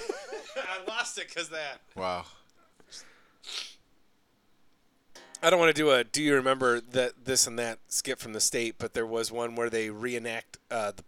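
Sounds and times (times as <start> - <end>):
laughter: 0.0 - 1.3
speech: 0.6 - 3.6, 5.4 - 11.0
sneeze: 3.4 - 3.8.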